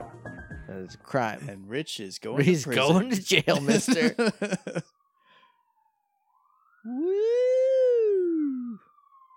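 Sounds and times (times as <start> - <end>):
speech: 0.9 - 4.9
laughter: 2.5 - 4.8
police siren steady high electronic wail: 3.6 - 9.3.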